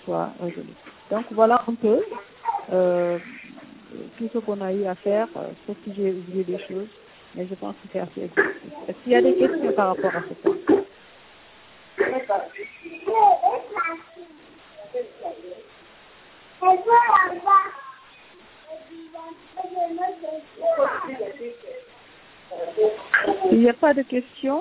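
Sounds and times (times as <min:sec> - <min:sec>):
speech: 0:00.1 - 0:10.9, 0:23.5 - 0:24.5
baby babbling and cooing: 0:02.1 - 0:02.8, 0:12.0 - 0:15.7, 0:16.6 - 0:21.9, 0:22.5 - 0:23.6.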